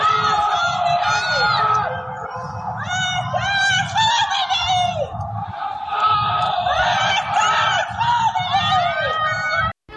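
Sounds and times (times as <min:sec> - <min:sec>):
many voices shouting and screaming from windows at night: 0:00.0 - 0:09.7.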